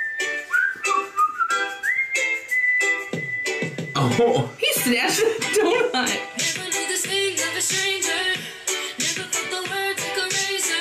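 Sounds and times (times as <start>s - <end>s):
whistled melody with sliding pitches: 0.0s - 4.6s
rhythmic bright percussive backing: 3.0s - 10.6s
speech: 4.0s - 10.7s.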